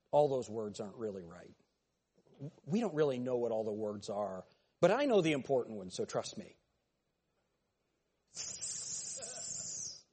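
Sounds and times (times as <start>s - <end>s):
speech: 0.1s - 1.6s, 2.4s - 6.6s, 8.3s - 8.5s
human voice imitating a snake hiss: 8.3s - 10.1s.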